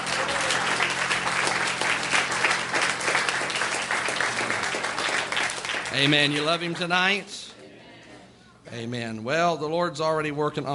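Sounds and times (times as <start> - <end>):
church congregation clapping hands in praise during a worship service: 0.0 - 7.5
speech: 6.0 - 7.5, 8.7 - 10.7.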